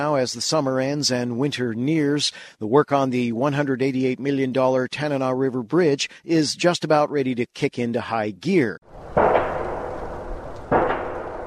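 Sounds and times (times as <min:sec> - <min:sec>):
speech: 0:00.0 - 0:09.0
massive pile-driving hammer pounding steel pilings into the Tanana riverbed: 0:09.0 - 0:11.4.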